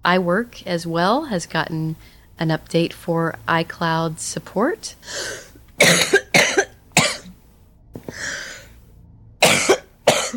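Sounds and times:
speech: 0.0s - 6.6s
woman coughing: 5.8s - 7.4s, 9.4s - 10.3s.

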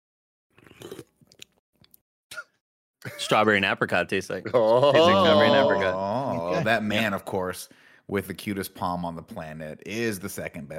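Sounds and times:
person sipping a sweet drink: 0.5s - 2.5s
laughter: 3.0s - 3.6s, 4.3s - 7.2s
speech: 3.0s - 10.7s.

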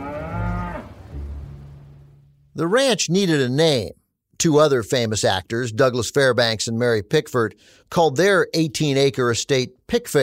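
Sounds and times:
cow on a home ranch mooing: 0.0s - 1.3s
speech: 2.6s - 10.2s.

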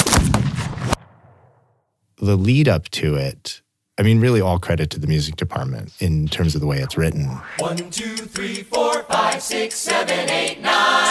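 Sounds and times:
loud layered gunshot sound effect of a duel: 0.0s - 1.6s
speech: 2.2s - 11.0s.

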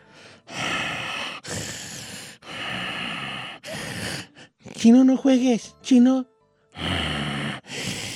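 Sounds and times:
voice imitating heavy huffing raspy snorting breaths: 0.0s - 4.7s, 6.8s - 8.1s
speech: 4.8s - 6.3s.

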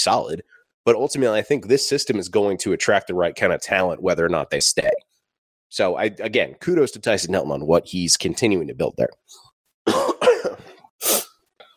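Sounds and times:
speech: 0.0s - 5.1s, 5.7s - 9.5s
person coughing: 9.8s - 11.7s
person clearing their throat: 9.9s - 10.9s
faint sniff: 11.0s - 11.5s.

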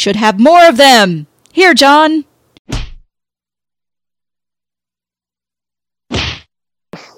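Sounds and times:
speech: 0.0s - 2.3s
sharp slaps: 2.7s - 3.0s, 6.1s - 7.1s.

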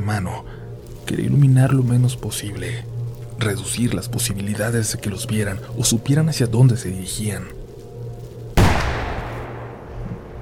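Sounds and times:
speech: 0.0s - 7.6s
low steady hum: 0.0s - 10.4s
distant gunshot with echo in a forest: 8.6s - 10.4s.

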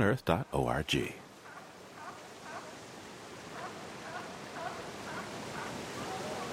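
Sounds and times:
speech: 0.0s - 1.2s
ocean waves washing along a rocky shoreline: 1.2s - 6.5s
seabird cries over the water: 1.4s - 2.8s, 3.5s - 6.5s.

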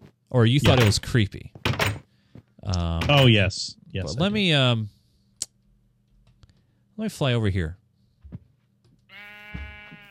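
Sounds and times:
speech: 0.3s - 1.6s, 2.7s - 5.0s, 7.0s - 7.8s
video game sheep bleating: 9.1s - 10.0s.

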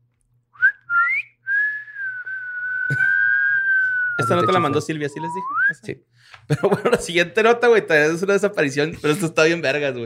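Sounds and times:
eerie whistling: 0.6s - 5.8s
laughter: 2.9s - 3.3s, 6.5s - 7.2s
speech: 4.2s - 10.0s.

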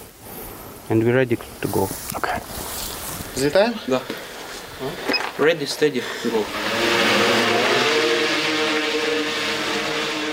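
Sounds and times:
speech: 0.9s - 2.8s, 3.4s - 7.0s
heavy bomber drone carrying a mortar shell taking off: 6.3s - 10.3s.

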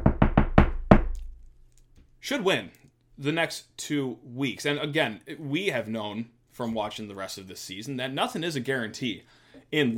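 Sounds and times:
knocking on wood: 0.0s - 1.3s
speech: 2.2s - 9.9s.

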